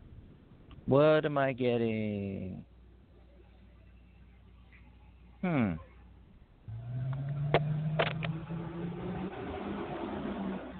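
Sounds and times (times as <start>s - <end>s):
speech: 0.9s - 2.7s, 5.4s - 5.9s
heavy trucks driving past outside: 6.7s - 10.7s.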